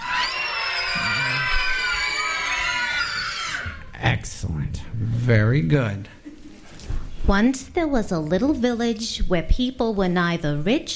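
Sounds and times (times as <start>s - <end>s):
audience screaming high-pitched imitating witches: 0.0s - 3.9s
speech: 4.4s - 6.2s, 7.3s - 10.9s.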